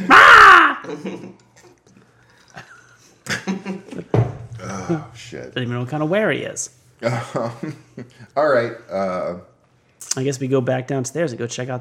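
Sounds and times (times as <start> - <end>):
raven cawing: 0.0 - 0.8
speech: 0.9 - 1.5, 4.9 - 11.7.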